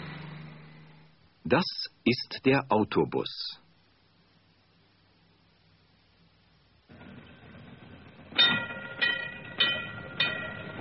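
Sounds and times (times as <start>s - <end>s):
speech: 1.5s - 3.6s
tram rolling along its rails: 6.9s - 10.7s.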